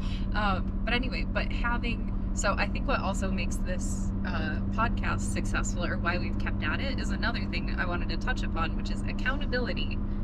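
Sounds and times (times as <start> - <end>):
road rumble in the cabin of a moving car: 0.0 - 10.2
speech: 0.4 - 10.2.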